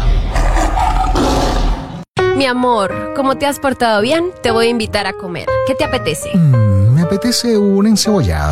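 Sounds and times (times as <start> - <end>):
tiger roaring: 0.2 - 2.1
speech: 2.4 - 8.5.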